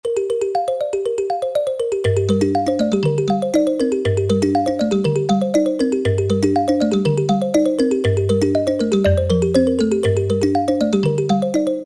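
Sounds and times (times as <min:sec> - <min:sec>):
kalimba on E-mu PK-6: 0:00.0 - 0:11.8.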